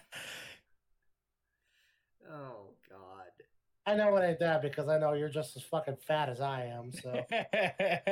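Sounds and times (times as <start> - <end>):
faint breath noise: 0.0 - 0.7
speech: 2.2 - 8.0
laughter: 7.0 - 8.0.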